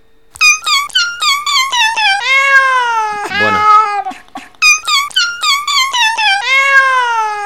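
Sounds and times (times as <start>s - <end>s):
cat meowing in a processed recording: 0.4s - 7.4s.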